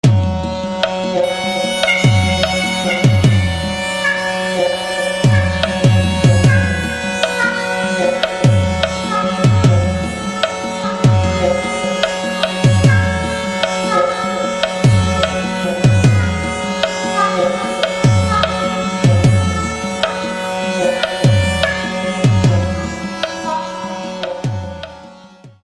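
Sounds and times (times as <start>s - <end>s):
sarangi: 0.0s - 25.6s.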